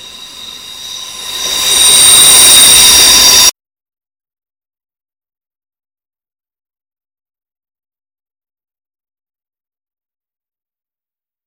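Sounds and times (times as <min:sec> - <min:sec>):
S-Bahn commuter train high wheel squeal: 0:00.0 - 0:03.5
S-Bahn commuter train roaring: 0:00.0 - 0:03.5.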